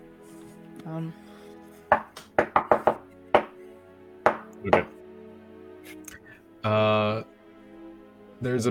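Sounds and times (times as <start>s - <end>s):
speech: 0.8s - 1.3s, 4.6s - 5.0s, 6.6s - 7.3s, 8.4s - 8.7s
knocking on a door: 1.9s - 3.6s, 4.2s - 4.9s.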